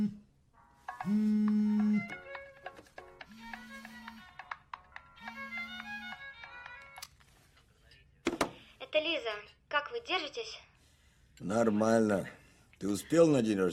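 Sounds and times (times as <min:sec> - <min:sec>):
speech: 0:01.0 - 0:02.2, 0:09.2 - 0:10.7, 0:11.4 - 0:13.7
telephone ringing with long buzzing tones: 0:01.0 - 0:06.4.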